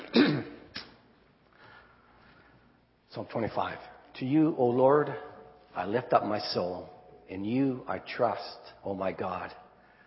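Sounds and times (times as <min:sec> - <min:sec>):
person clearing throat: 0:00.0 - 0:00.9
speech: 0:03.1 - 0:09.6.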